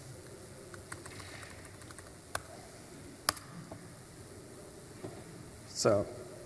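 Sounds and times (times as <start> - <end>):
faint room hiss: 0.0 - 6.4
typing on a computer keyboard to start software updates: 0.7 - 2.5
speech: 5.8 - 6.2.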